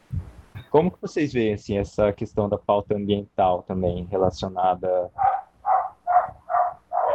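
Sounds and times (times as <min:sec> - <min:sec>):
speech: 0:00.7 - 0:05.3
dog barking: 0:05.2 - 0:07.1.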